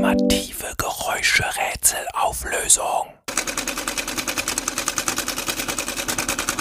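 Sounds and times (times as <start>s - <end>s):
speech: 0.1s - 4.4s
sewing machine running with needle clattering: 3.3s - 6.5s.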